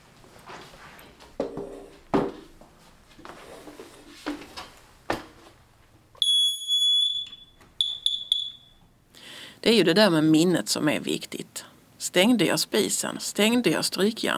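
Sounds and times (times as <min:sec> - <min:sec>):
smoke detector alarm beeping: 0:06.2 - 0:09.0
speech: 0:09.7 - 0:14.3.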